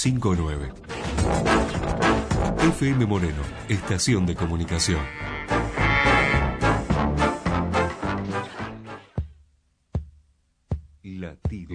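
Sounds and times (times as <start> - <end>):
speech: 0.0 - 5.7, 11.2 - 11.7
dense burst of music: 0.8 - 9.0
sharp evenly spaced thumps of a stylized heartbeat sound effect: 9.2 - 11.7.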